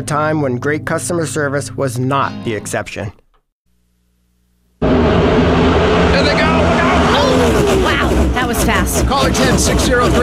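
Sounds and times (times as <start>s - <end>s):
speech: 0.0s - 3.2s, 8.7s - 10.2s
dense continuous crowd-and-motor din: 4.8s - 10.2s
loud engine roar: 4.8s - 10.2s
race cars whizzing by: 4.8s - 10.2s.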